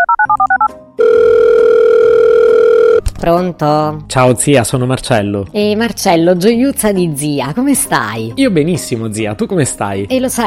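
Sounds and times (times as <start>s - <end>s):
touch-tone telephone dialing beeps: 0.0s - 3.0s
speech: 3.2s - 10.4s.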